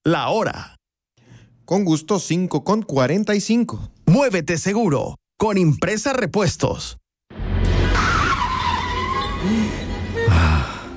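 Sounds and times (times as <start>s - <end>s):
speech: 0.0s - 0.8s, 1.7s - 7.0s
car tires squealing in a skid while braking hard: 7.8s - 10.0s.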